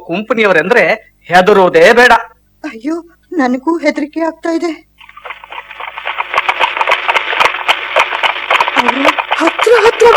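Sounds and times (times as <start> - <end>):
speech: 0.0 - 5.4, 9.7 - 10.1
horses galloping: 5.0 - 10.1.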